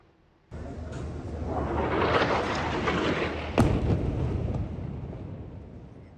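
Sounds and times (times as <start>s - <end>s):
powerful explosion from an airstrike on a mosque with roaring rumble: 1.1s - 5.7s.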